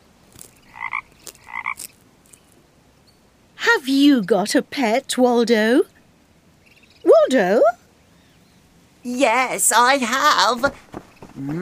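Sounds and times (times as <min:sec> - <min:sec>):
frog croaking: 0:00.4 - 0:02.0
speech: 0:03.8 - 0:05.9, 0:07.3 - 0:07.8, 0:09.1 - 0:11.6.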